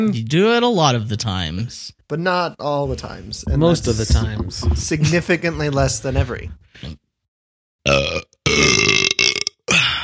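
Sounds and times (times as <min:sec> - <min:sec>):
speech: 0:00.0 - 0:07.0, 0:07.8 - 0:08.6
loud burp into a microphone: 0:07.8 - 0:10.0.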